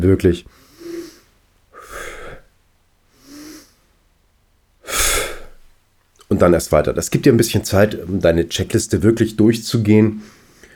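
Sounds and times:
speech: 0.0s - 0.6s, 6.4s - 10.4s
calm controlled breathing during a Turkish get-up exercise: 0.5s - 2.5s, 3.1s - 4.0s, 10.2s - 10.7s.

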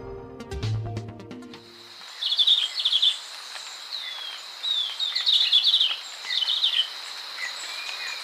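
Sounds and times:
music: 0.0s - 1.8s
steady insect drone: 1.6s - 8.2s
chestnut-capped greenlet singing: 2.0s - 8.2s.

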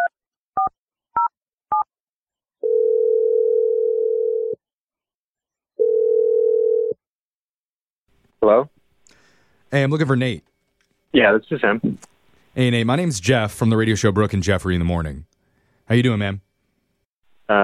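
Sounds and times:
long steady telephone ringback tones: 2.6s - 4.6s, 5.8s - 7.0s
speech: 8.5s - 8.7s, 9.7s - 10.5s, 11.1s - 15.3s, 15.9s - 16.5s.

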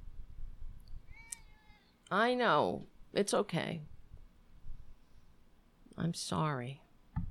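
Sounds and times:
male cat meowing: 1.1s - 2.0s
speech: 2.1s - 3.9s, 6.0s - 6.8s.

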